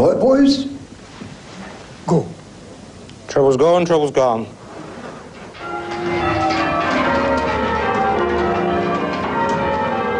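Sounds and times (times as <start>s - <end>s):
speech: 0.0s - 0.8s, 2.1s - 2.3s, 3.4s - 4.6s
peal of church bells in English change ringing: 5.6s - 10.1s.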